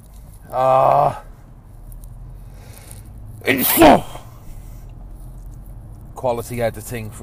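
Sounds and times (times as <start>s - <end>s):
speech: 0.5s - 1.3s, 3.4s - 4.2s, 6.2s - 7.2s
person sneezing: 3.4s - 4.4s.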